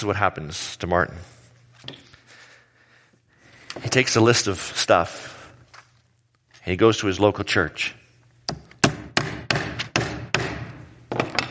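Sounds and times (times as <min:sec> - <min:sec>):
speech: 0:00.0 - 0:02.0, 0:03.8 - 0:05.3, 0:06.6 - 0:08.0
hammer nailing into a wooden door: 0:08.5 - 0:11.4.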